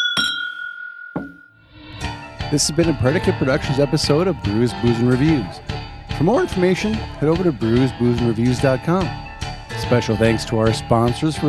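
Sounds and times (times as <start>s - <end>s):
glasses clinking in a toast: 0.0s - 1.6s
speech: 2.5s - 9.2s, 9.8s - 11.4s.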